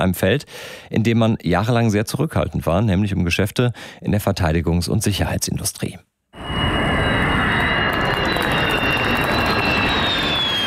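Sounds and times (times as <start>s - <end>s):
speech: 0.0s - 6.1s
Turkish-made KAAN fighter jet with US-supplied engine roaring on maiden flight: 6.4s - 10.6s.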